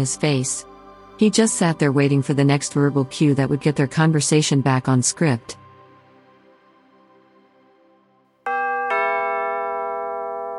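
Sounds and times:
speech: 0:00.0 - 0:05.6
residence doorbell chiming two bright tones: 0:08.5 - 0:10.5.

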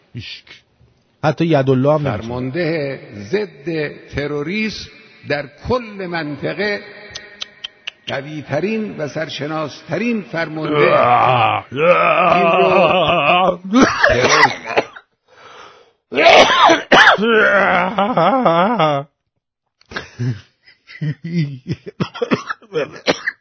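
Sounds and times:
speech: 0:00.2 - 0:00.6, 0:01.2 - 0:07.0, 0:08.1 - 0:14.6, 0:17.2 - 0:18.6, 0:20.2 - 0:23.3
laughter: 0:12.2 - 0:15.0, 0:17.8 - 0:19.0, 0:19.9 - 0:23.1
person in a loud raspy coughing fit: 0:13.7 - 0:15.1, 0:16.2 - 0:17.7, 0:21.9 - 0:23.4.

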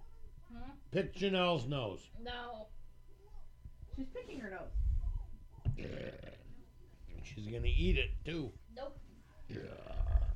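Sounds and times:
speech: 0:00.9 - 0:02.8, 0:04.0 - 0:04.8, 0:05.8 - 0:06.4, 0:07.2 - 0:10.3
low rumbling burp: 0:05.7 - 0:06.5, 0:09.5 - 0:10.3.

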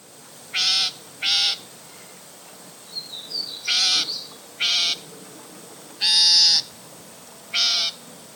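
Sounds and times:
loggerhead shrike screeching calls: 0:00.6 - 0:01.6, 0:03.6 - 0:05.0, 0:06.0 - 0:06.7, 0:07.5 - 0:08.0.

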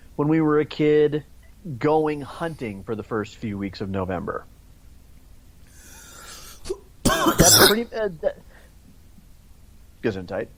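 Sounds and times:
speech: 0:00.2 - 0:04.5, 0:07.5 - 0:08.5, 0:10.0 - 0:10.5
single harsh cough: 0:06.6 - 0:07.9.

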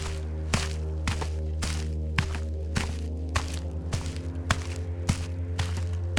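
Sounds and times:
constant low hum: 0:00.0 - 0:06.1
footsteps crunching through snow at walking pace: 0:00.0 - 0:06.1.

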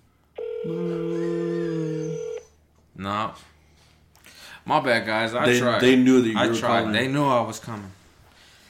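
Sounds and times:
electronic phone ringback tone through a handset: 0:00.4 - 0:02.6
speech: 0:00.6 - 0:01.2, 0:03.0 - 0:03.5, 0:04.6 - 0:08.0.

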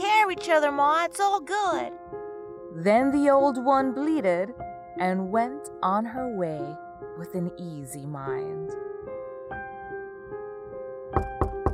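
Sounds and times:
speech: 0:00.3 - 0:02.1, 0:02.8 - 0:08.9
knocking on a wooden door: 0:11.2 - 0:11.7.

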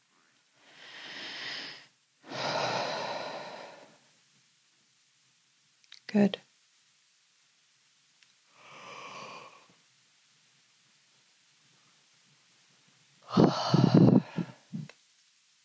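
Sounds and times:
heavier breath with a yawning voiced quality: 0:00.6 - 0:04.0, 0:08.5 - 0:09.8, 0:13.2 - 0:14.7
soft drawn-out exhale: 0:00.6 - 0:04.0, 0:13.2 - 0:14.7
speech: 0:06.1 - 0:06.5.

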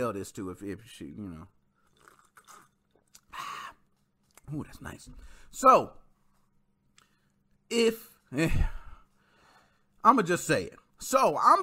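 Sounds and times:
speech: 0:00.0 - 0:01.6, 0:04.5 - 0:06.0, 0:07.7 - 0:08.8, 0:10.0 - 0:11.6
slurping sip of a drink: 0:01.8 - 0:03.7
soft crackly mouth sounds: 0:01.9 - 0:03.4.

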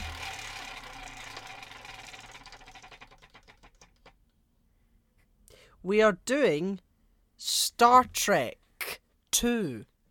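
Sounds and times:
wheel being spun with ratcheting clicks: 0:00.0 - 0:04.2
speech: 0:05.8 - 0:06.8, 0:07.4 - 0:08.6, 0:09.4 - 0:09.9.

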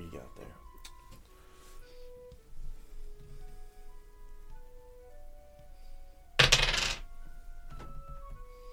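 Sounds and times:
dice clattering on a hard table: 0:06.4 - 0:07.1.

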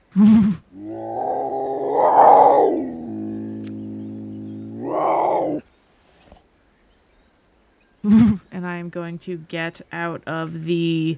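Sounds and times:
speech: 0:00.2 - 0:00.6, 0:08.9 - 0:11.1
person imitating a snow leopard roar: 0:00.2 - 0:05.6.

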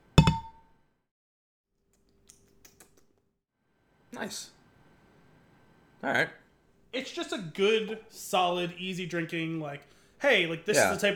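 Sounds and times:
glasses of hazy lager beer clinking in a toast: 0:00.2 - 0:00.6
speech: 0:04.1 - 0:04.6, 0:06.0 - 0:11.1.

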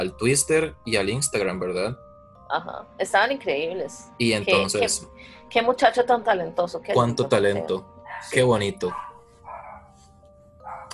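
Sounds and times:
speech: 0:00.0 - 0:09.1
dog barking: 0:08.0 - 0:10.0, 0:10.6 - 0:10.9.

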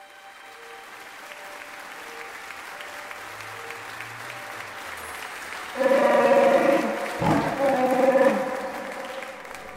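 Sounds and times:
celebratory applause: 0:00.0 - 0:09.7
harmonic Wookiee roar: 0:05.8 - 0:09.2.

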